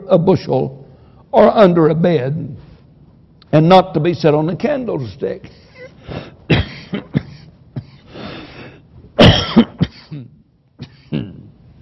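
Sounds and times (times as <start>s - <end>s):
speech: 0.1s - 2.6s, 3.5s - 6.2s
fit of harsh coughing: 5.6s - 11.6s
rough throat-clearing: 9.2s - 11.6s.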